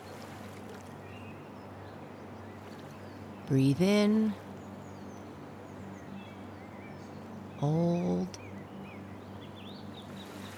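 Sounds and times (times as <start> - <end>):
lake water lapping at shore: 0.0 - 1.0, 10.1 - 10.5
speech: 3.5 - 4.4, 7.6 - 8.5.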